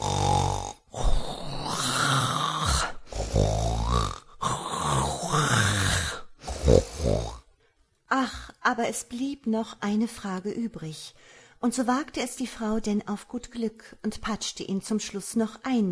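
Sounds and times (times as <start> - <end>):
loud rasping rattling snoring: 0.0 - 7.5
speech: 8.8 - 15.9.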